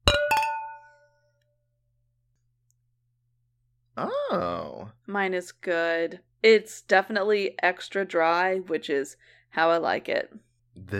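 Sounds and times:
glasses of extra dry cava clinking in a toast: 0:00.0 - 0:01.0
speech: 0:04.0 - 0:10.9.

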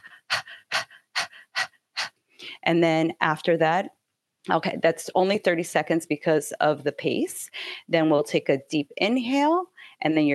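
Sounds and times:
rapid rhythmic panting as a breathing exercise: 0:00.0 - 0:02.2
speech: 0:02.6 - 0:10.3.

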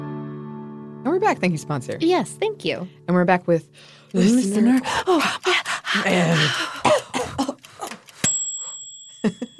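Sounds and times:
speech: 0:01.1 - 0:07.4
person coughing after eating spicy food: 0:06.9 - 0:07.6
bright bell-like ding: 0:08.2 - 0:09.5.

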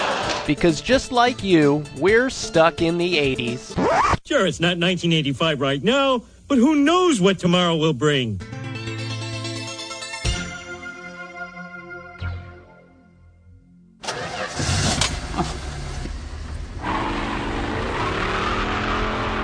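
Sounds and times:
speech: 0:00.5 - 0:08.6
car engine revving high and whining: 0:14.0 - 0:19.4
roaring rush of speed and road noise: 0:14.0 - 0:19.4.

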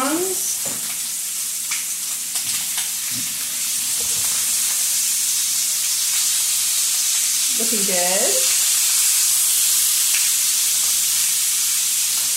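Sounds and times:
lamb chops sizzling in a frying pan: 0:00.0 - 0:12.3.

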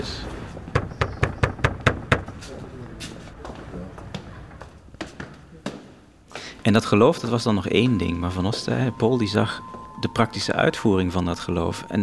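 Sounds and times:
faint murmur: 0:00.0 - 0:11.8
firm knocks on a church door: 0:00.7 - 0:02.4
speech: 0:06.6 - 0:12.0.

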